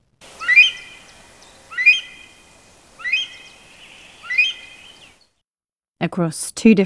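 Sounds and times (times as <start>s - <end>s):
Himalayan monal pheasant calling with rising whistle: 0.2s - 5.2s
speech: 6.0s - 6.8s.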